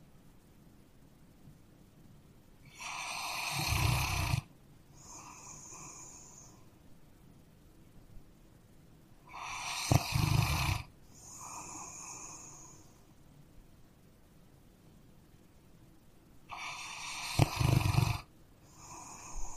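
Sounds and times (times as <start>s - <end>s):
dog snoring: 2.7s - 6.6s, 9.3s - 12.9s, 16.5s - 19.5s.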